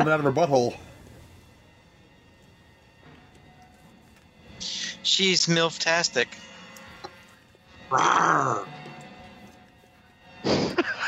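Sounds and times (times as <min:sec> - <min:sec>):
speech: 0:00.0 - 0:00.9, 0:05.0 - 0:06.5, 0:07.9 - 0:08.8
cougar growling: 0:06.9 - 0:09.7
laughter: 0:10.4 - 0:11.0.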